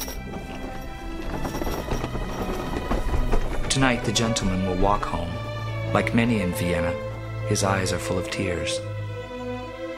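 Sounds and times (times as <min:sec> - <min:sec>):
horse-drawn carriage moving off with dense clatter: 0:00.0 - 0:04.6
horse hooves clip-clopping: 0:00.0 - 0:05.3
speech: 0:03.8 - 0:08.9.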